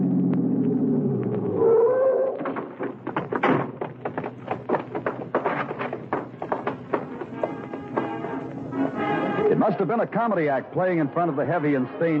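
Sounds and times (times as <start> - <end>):
car engine rumble turning into an alley: 0.0 - 9.5
taps and clicks: 2.8 - 8.6
speech: 9.6 - 12.1.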